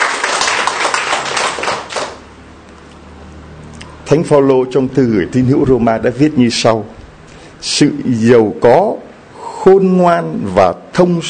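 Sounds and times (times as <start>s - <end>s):
crowd applauding in celebration of a feast day: 0.0s - 2.4s
speech: 4.1s - 7.0s, 7.6s - 9.0s, 9.6s - 11.2s.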